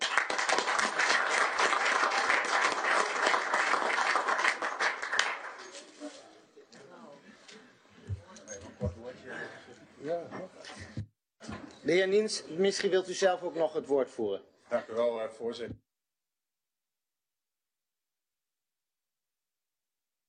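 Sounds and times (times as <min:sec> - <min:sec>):
audience applause in a council chamber: 0:00.0 - 0:05.7
quiet murmurs: 0:05.7 - 0:11.7
speech: 0:11.9 - 0:15.8.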